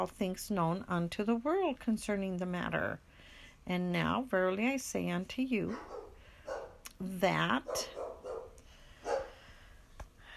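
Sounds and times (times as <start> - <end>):
speech: 0.0 - 6.0, 7.0 - 8.0
dog barking: 5.7 - 6.8, 7.7 - 9.4.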